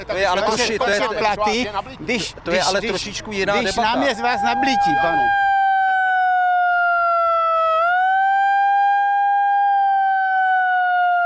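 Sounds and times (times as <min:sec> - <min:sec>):
speech: 0:00.0 - 0:05.4
small portable handheld electronic siren wailing: 0:03.8 - 0:11.2.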